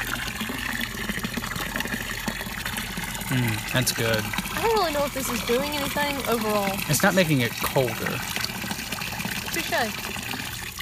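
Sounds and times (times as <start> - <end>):
hot water pouring into a container: 0.0 - 10.7
speech: 3.3 - 8.5, 9.5 - 10.1.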